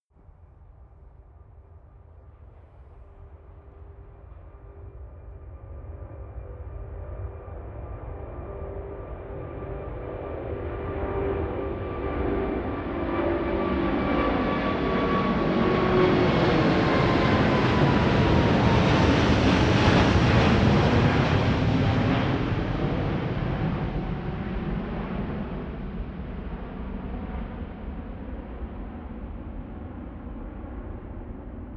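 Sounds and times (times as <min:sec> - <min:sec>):
airliner flyby: 0:07.9 - 0:31.7.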